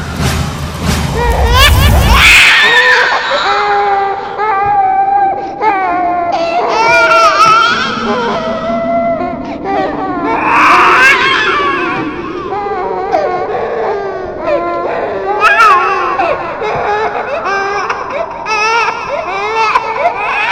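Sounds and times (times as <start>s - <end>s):
low thudding rumble: 0.2s - 2.4s, 7.3s - 14.6s
baby crying in the back of a car: 1.2s - 20.5s.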